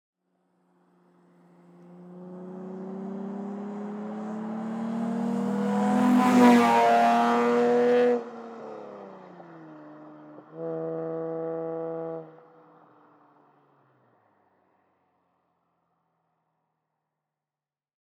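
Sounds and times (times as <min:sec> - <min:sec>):
race cars passing by stands: 0:00.8 - 0:14.1.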